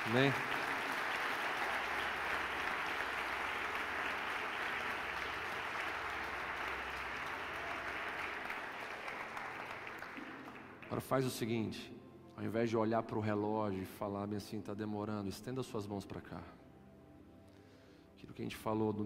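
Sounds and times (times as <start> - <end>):
church congregation applauding: 0.0 - 11.3
speech: 0.1 - 0.6, 10.9 - 16.6, 18.3 - 19.0.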